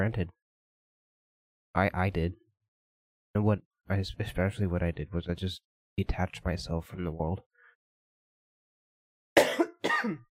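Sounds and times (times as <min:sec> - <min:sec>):
speech: 0:00.0 - 0:00.4, 0:01.8 - 0:02.4, 0:03.4 - 0:07.5, 0:10.0 - 0:10.3
harsh raspy coughs: 0:09.4 - 0:10.3.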